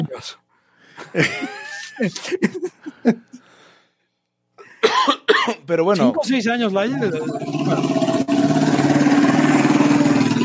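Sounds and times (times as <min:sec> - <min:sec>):
speech: 0:00.0 - 0:00.4, 0:01.0 - 0:03.4, 0:04.9 - 0:08.2
laughter: 0:01.0 - 0:03.4
motorcycle engine passing by: 0:07.0 - 0:10.4.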